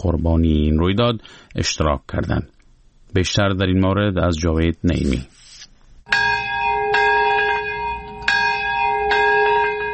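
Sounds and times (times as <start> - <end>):
speech: 0.0 - 2.5, 3.1 - 5.4
memorial bells ringing at a ceremony in Nagasaki Japan: 6.1 - 9.9.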